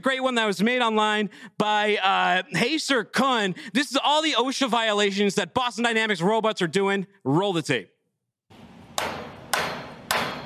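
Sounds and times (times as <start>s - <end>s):
speech: 0.0s - 8.0s
hammer striking metal: 8.9s - 10.4s.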